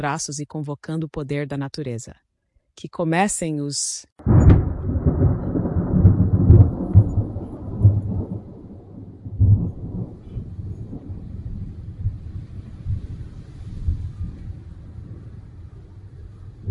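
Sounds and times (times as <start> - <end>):
speech: 0.0 - 4.3
deep rolling thunder: 4.2 - 16.6
rain: 4.2 - 16.6
wind: 4.2 - 16.6.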